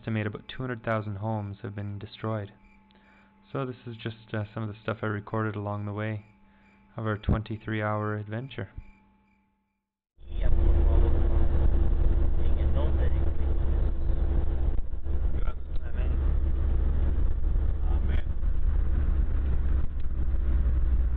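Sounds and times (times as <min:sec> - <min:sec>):
speech: 0:00.0 - 0:02.6, 0:03.5 - 0:06.3, 0:07.0 - 0:08.9
vehicle engine droning on a road in Guatemala behind a supply truck: 0:10.2 - 0:21.1
road noise: 0:10.3 - 0:21.1.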